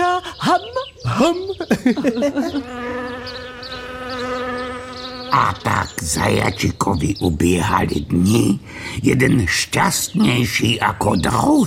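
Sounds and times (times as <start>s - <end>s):
laughter: 0.5s - 4.0s
speech: 1.2s - 3.0s, 5.3s - 11.6s
voice imitating a buzzing fly: 2.5s - 6.0s.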